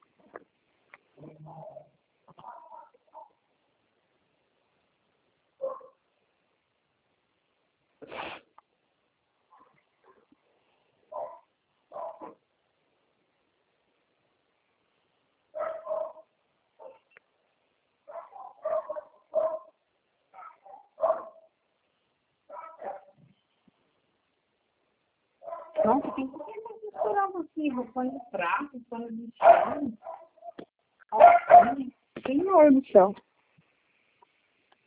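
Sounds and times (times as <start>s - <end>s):
dogs barking: 1.4s - 3.4s, 5.6s - 6.0s, 11.1s - 12.4s, 15.6s - 17.1s, 18.1s - 19.8s, 20.4s - 21.5s, 22.5s - 23.2s, 25.4s - 27.2s, 28.1s - 28.8s, 29.4s - 31.9s
speech: 25.8s - 30.1s, 31.6s - 33.2s.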